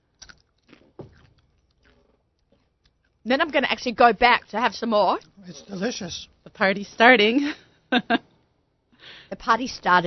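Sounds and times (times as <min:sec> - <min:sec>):
soft faint chewing: 0:00.0 - 0:03.3
crunchy bite into a piece of apple dipped in hummus: 0:00.1 - 0:02.6
speech: 0:03.2 - 0:08.3, 0:09.3 - 0:10.0.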